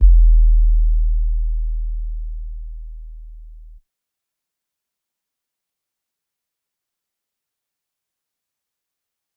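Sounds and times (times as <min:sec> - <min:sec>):
urban trap hip hop kick drum: 0:00.0 - 0:01.7.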